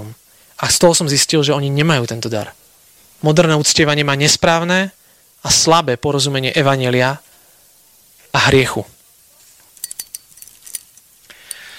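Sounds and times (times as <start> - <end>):
speech: 0.6 - 2.6, 3.2 - 7.3, 8.4 - 9.0
bunch of keys jingling: 9.7 - 11.7.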